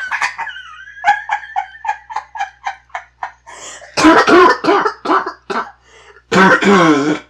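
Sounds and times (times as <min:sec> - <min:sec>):
rapid breathy laughter: 0:00.0 - 0:04.4
harsh coughing from a chest cold: 0:03.5 - 0:07.2.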